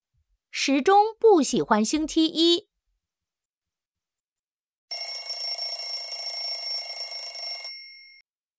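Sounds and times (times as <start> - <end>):
speech: 0.6 - 2.7
alarm clock ringing in a bright metallic bell trill: 4.9 - 8.2.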